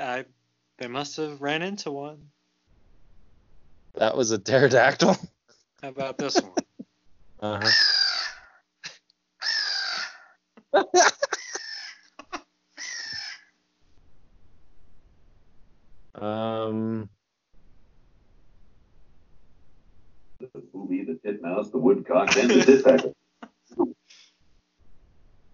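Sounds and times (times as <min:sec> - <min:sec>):
speech: 0:00.2 - 0:02.4, 0:04.0 - 0:06.6, 0:07.4 - 0:08.0, 0:21.7 - 0:23.2
laughter: 0:06.0 - 0:06.8, 0:10.7 - 0:11.6, 0:20.6 - 0:23.9
crow cawing: 0:07.6 - 0:08.6, 0:09.4 - 0:10.4, 0:11.3 - 0:12.1, 0:12.8 - 0:13.5.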